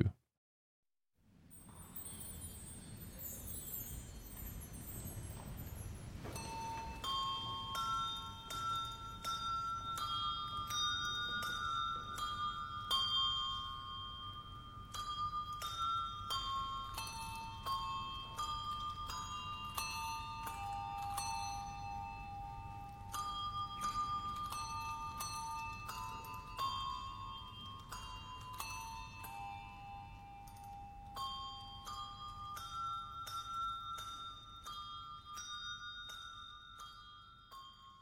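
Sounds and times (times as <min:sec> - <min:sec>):
slow hymn melody on bells: 0:01.7 - 0:38.0.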